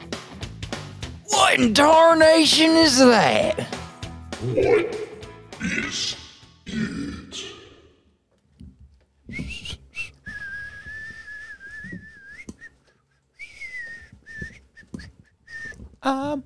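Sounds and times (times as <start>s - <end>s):
speech: 1.5s - 3.8s, 4.4s - 5.0s, 5.6s - 7.6s, 16.0s - 16.4s
person whistling a wavering clear tune: 9.3s - 12.8s, 13.4s - 15.8s.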